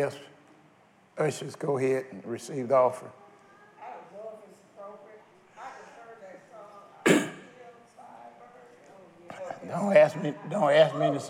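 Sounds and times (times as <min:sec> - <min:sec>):
speech: 0:00.0 - 0:00.3, 0:01.2 - 0:03.2, 0:09.7 - 0:11.2
throat clearing at a church service: 0:07.0 - 0:07.5.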